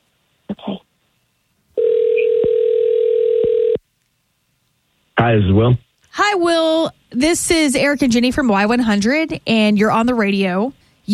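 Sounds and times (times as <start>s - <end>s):
steady electronic telephone ringback tone: 1.8s - 3.8s
brief sound: 5.2s - 5.8s
speech: 5.3s - 11.1s.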